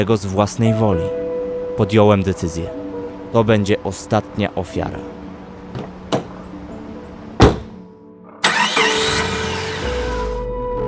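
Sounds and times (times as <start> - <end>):
speech: 0.0 - 1.2, 1.8 - 5.8
sharp knocks and clunks: 5.7 - 6.4, 7.4 - 7.8
car engine running while driving: 8.4 - 10.4.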